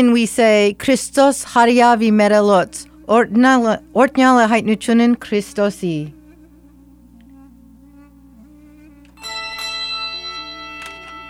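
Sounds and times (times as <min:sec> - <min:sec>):
speech: 0:00.0 - 0:06.2
handbell choir ringing bells: 0:09.2 - 0:11.2.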